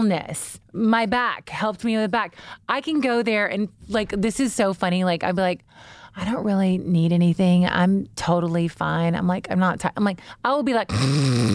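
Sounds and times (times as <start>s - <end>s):
speech: 0.0s - 11.5s
voice imitating snoring: 10.9s - 11.5s.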